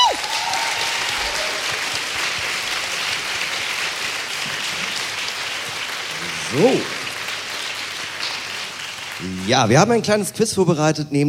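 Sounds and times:
live audience loud sustained applause: 0.0 - 10.3
speech: 6.5 - 7.0, 9.5 - 11.2.

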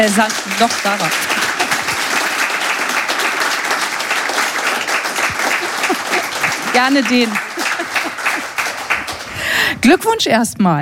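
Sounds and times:
speech: 0.0 - 1.3, 6.1 - 7.5, 9.8 - 10.8
loud sustained applause from a large audience: 0.0 - 9.7
laughter: 0.9 - 9.5.

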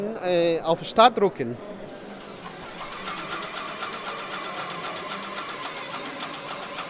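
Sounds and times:
speech: 0.0 - 2.0
airless sprayer pump pulsing rhythmically: 1.9 - 6.8
painting robot airless sprayer hissing while spraying paint: 1.9 - 6.8.

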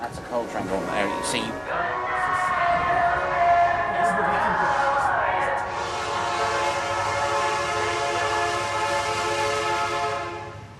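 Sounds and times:
coal freight train rumbling past: 0.0 - 10.7
droning horn-like tones: 0.4 - 10.7.

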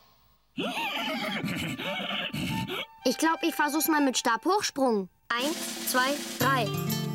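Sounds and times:
horse neighing while its tail is pulled: 0.6 - 2.9
speech: 0.6 - 7.0.

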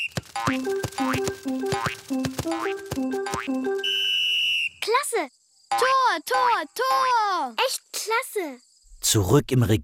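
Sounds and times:
cartoon-style football bounces: 0.2 - 4.0
speech: 0.4 - 4.0, 4.9 - 9.8.

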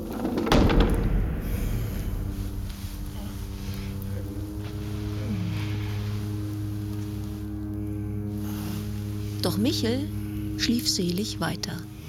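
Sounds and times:
low steady droning hum: 0.0 - 12.0
door bursting open: 0.1 - 3.0
speech: 9.5 - 11.9.

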